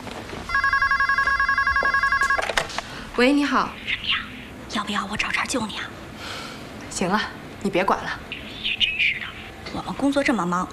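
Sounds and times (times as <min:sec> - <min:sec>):
quiet noise: 0:00.0 - 0:10.7
telephone ringing with a bright pulsing electronic trill: 0:00.5 - 0:02.7
speech: 0:03.2 - 0:06.0, 0:07.0 - 0:08.3, 0:09.7 - 0:10.7.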